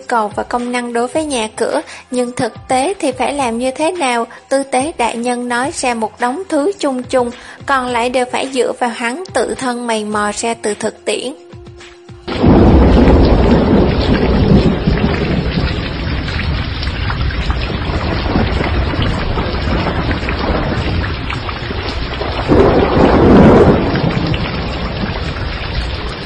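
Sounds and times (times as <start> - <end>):
speech: 0.1 - 11.4
heavy rain pouring in an early spring thunderstorm: 12.3 - 26.2
low thunder rumbling in an early spring thunderstorm: 12.3 - 26.2.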